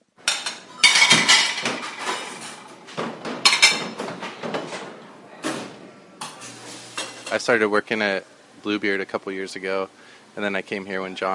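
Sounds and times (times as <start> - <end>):
plates and metal knocking together: 0.2 - 4.8
dishes clattering in a restaurant dish pit: 0.2 - 4.9
speech: 7.3 - 11.3.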